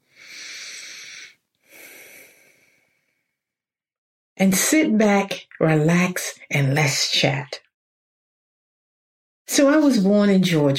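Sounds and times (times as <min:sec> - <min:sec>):
gentle deep cleansing breath: 0:00.0 - 0:03.6
speech: 0:04.4 - 0:07.6, 0:09.5 - 0:10.7.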